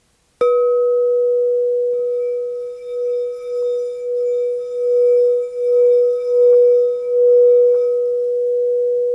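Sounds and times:
quartz singing bowl ringing the note E: 0:00.4 - 0:09.1.

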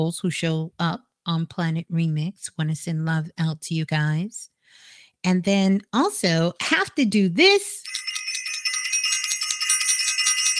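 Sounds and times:
speech: 0:00.0 - 0:08.1
bright high-pitched bell ringing: 0:07.8 - 0:10.5.

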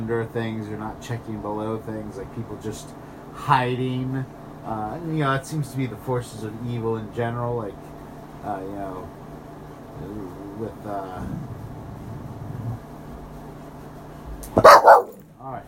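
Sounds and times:
speech: 0:00.0 - 0:09.2, 0:10.0 - 0:11.5
low vocal sounds: 0:10.0 - 0:13.0
dog barking: 0:14.5 - 0:15.2.

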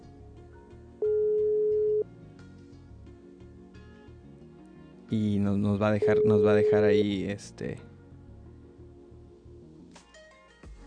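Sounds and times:
telephone ringback tone: 0:01.0 - 0:02.1, 0:06.0 - 0:07.0
speech: 0:05.1 - 0:07.9.

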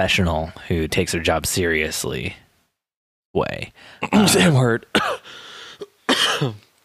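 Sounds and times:
speech: 0:00.0 - 0:02.4, 0:03.3 - 0:05.4, 0:06.4 - 0:06.7
harsh raspy cough: 0:04.0 - 0:06.7.

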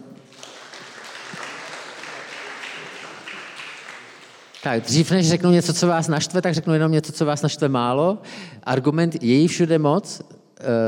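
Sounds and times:
crowd applauding: 0:00.0 - 0:05.3
speech: 0:04.6 - 0:10.8.

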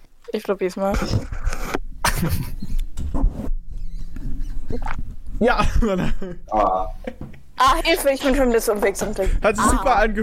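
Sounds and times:
speech: 0:00.3 - 0:01.4, 0:02.2 - 0:02.7, 0:04.7 - 0:10.2
swallowing recorded with microphone against throat: 0:04.5 - 0:05.2.

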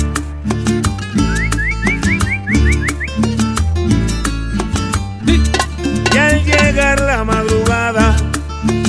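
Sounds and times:
loud backing music with steady bass and percussion: 0:00.0 - 0:08.8
whistled cowherd's cattle-calling song: 0:01.2 - 0:03.4.

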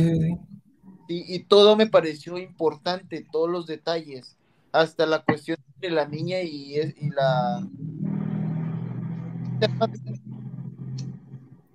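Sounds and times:
speech: 0:00.0 - 0:00.5, 0:01.1 - 0:08.0, 0:09.6 - 0:10.3
motorcycle passing by outside: 0:07.4 - 0:11.7.

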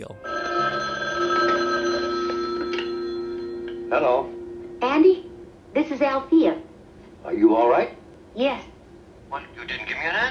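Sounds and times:
telephone bell ringing: 0:00.2 - 0:04.2
speech: 0:04.0 - 0:04.3, 0:06.0 - 0:08.7, 0:09.3 - 0:10.2.

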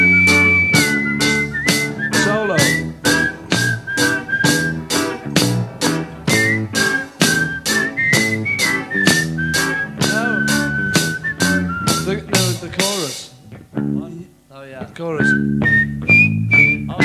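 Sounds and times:
people whistling a song's verse tune: 0:00.0 - 0:05.1, 0:06.3 - 0:12.5, 0:15.2 - 0:17.0
band backing with a regular beat: 0:00.0 - 0:14.4, 0:15.2 - 0:17.0.

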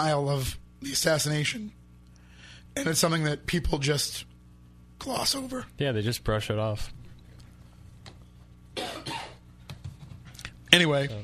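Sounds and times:
speech: 0:00.0 - 0:01.8, 0:02.8 - 0:04.3, 0:05.0 - 0:07.0, 0:10.7 - 0:11.2
person coughing: 0:08.8 - 0:09.4.

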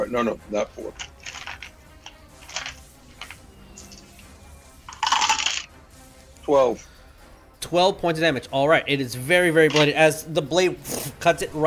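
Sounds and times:
speech: 0:00.0 - 0:01.2, 0:06.5 - 0:06.9, 0:07.7 - 0:11.6
two six-sided dice rattling across a hard surface: 0:01.0 - 0:01.7, 0:02.4 - 0:03.4, 0:04.9 - 0:05.7.

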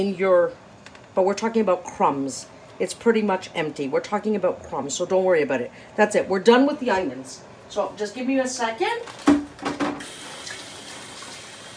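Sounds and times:
speech: 0:00.0 - 0:00.6, 0:01.2 - 0:09.7
tap water running at a kitchen sink rinsing onion off hands: 0:09.7 - 0:11.7.

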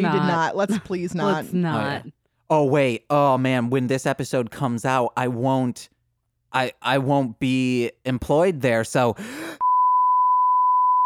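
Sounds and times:
speech: 0:00.0 - 0:05.9, 0:06.5 - 0:09.5
long censor beep: 0:09.6 - 0:11.0.

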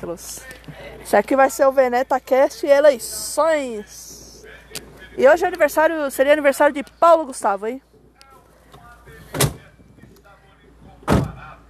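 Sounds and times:
speech: 0:00.0 - 0:04.1, 0:04.7 - 0:07.9
low steady hum: 0:00.0 - 0:11.6
doors shutting: 0:08.6 - 0:11.5.

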